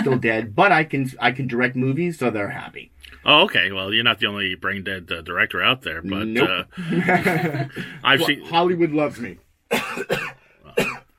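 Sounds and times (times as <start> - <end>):
laughter: 0.0 - 0.3, 6.4 - 8.4
speech: 0.0 - 10.9
man coughing: 9.7 - 11.1.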